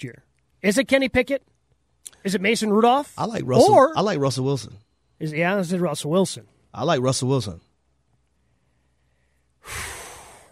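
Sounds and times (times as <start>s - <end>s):
speech: 0.0s - 7.7s, 9.6s - 9.9s
deep breath: 8.4s - 10.4s.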